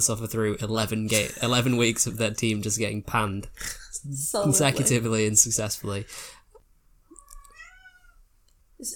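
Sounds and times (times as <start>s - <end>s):
speech: 0.0s - 6.4s, 8.8s - 8.9s
laughter: 4.4s - 5.2s
cat meowing for food: 7.1s - 8.3s.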